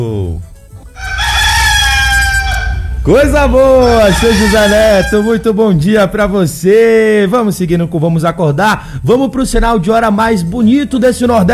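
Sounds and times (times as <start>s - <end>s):
rooster crowing: 1.0s - 5.5s
speech: 3.1s - 11.5s.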